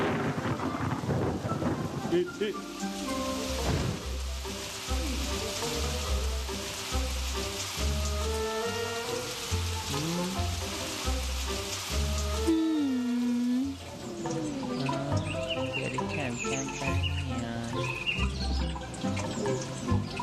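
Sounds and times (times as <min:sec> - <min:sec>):
thunder rumbling: 0:00.0 - 0:02.4, 0:03.1 - 0:06.2
heavy rain: 0:00.0 - 0:20.2.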